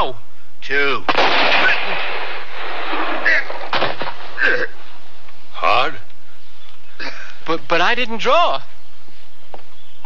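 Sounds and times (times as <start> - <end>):
speech: 0.0 - 2.7, 7.5 - 8.7
gunshot in a standoff: 1.1 - 4.5.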